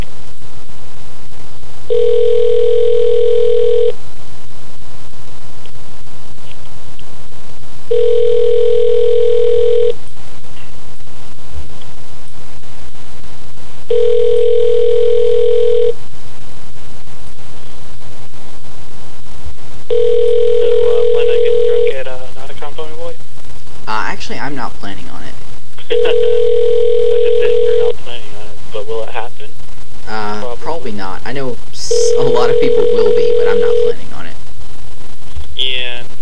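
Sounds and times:
constant low hum: 0.0 - 36.1
speech: 1.9 - 2.1
telephone call tones while a number is dialed: 1.9 - 4.0, 7.9 - 10.0, 13.9 - 16.0, 19.9 - 22.0, 25.9 - 28.0, 31.8 - 34.0.

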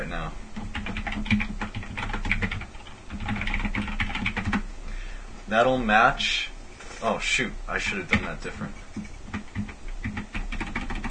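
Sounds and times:
typing on a computer keyboard: 0.6 - 4.6, 8.1 - 11.0
speech: 5.5 - 9.1.

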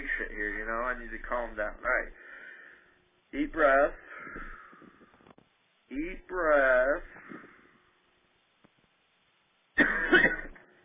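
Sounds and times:
speech: 0.2 - 2.3, 3.3 - 4.5, 5.9 - 7.4
raspy cough: 9.8 - 10.7.

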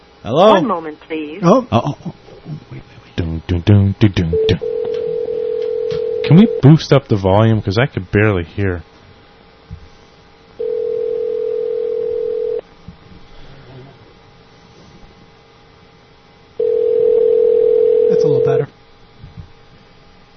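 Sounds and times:
speech: 0.2 - 2.9, 3.5 - 4.7, 6.2 - 8.9
Skype internet phone call ring tones: 4.4 - 6.6, 10.6 - 12.6, 16.6 - 18.6
internet phone call line noise with faint clicks: 4.5 - 6.4.

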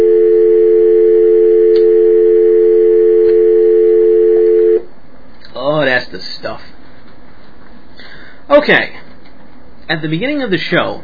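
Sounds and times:
telephone dial tone: 0.0 - 4.8
speech: 8.6 - 9.0, 9.9 - 11.0.

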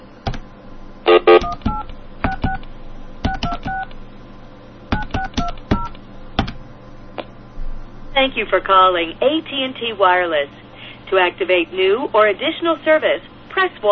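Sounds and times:
faint hum: 0.0 - 13.8
phone number punched in on a keypad with two-pitch touch-tone beeps: 1.1 - 2.6, 3.3 - 3.9, 5.0 - 6.0
speech: 8.2 - 13.8.

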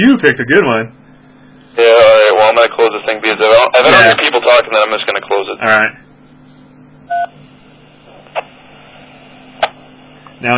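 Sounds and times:
speech: 0.0 - 1.0, 1.8 - 6.0, 10.4 - 10.5
faint steady low hum: 0.0 - 10.5
DTMF keypad tones sent over an IRLP amateur radio link: 7.1 - 7.4.

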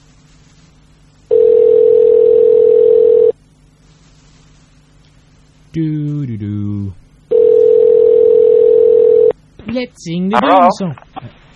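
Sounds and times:
steady telephone ring tone on a payphone line: 1.3 - 3.3, 7.3 - 9.3
speech: 5.8 - 6.1, 9.8 - 11.1.

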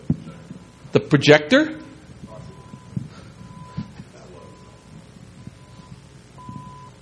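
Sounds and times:
low rumble: 0.0 - 1.0, 1.8 - 7.0
voices: 0.0 - 6.4
speech: 0.9 - 1.8
electronic beeping: 1.8 - 7.0.

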